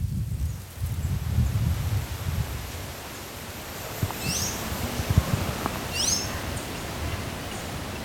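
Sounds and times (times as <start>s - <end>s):
leaves rustling in wind in a dense replanted forest: 0.0s - 8.0s
bird chirping in a replanted forest: 4.2s - 4.6s, 5.9s - 8.0s.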